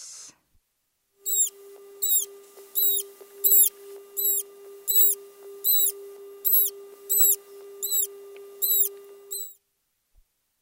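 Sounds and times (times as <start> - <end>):
steady low hum: 1.1 - 9.6
Amazonian manatee squeaks: 1.3 - 1.5, 2.0 - 5.9, 6.4 - 9.6.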